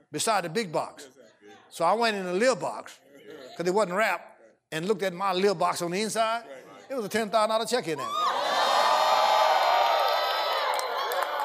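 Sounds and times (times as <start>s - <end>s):
speech: 0.1s - 3.0s, 3.6s - 8.2s
large audience crowd cheering and whooping: 8.0s - 11.4s.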